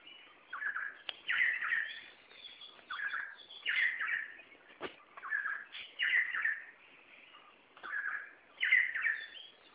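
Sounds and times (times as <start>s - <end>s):
Red spurfowl calling in harsh grating two-part phrases: 0.0s - 4.4s, 5.2s - 6.7s, 7.8s - 9.7s.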